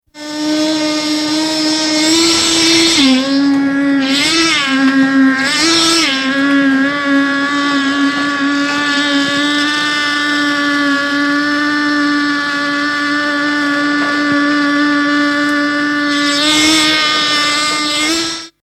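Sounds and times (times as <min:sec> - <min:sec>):
concrete vibrator on a construction site: 0:00.0 - 0:18.6.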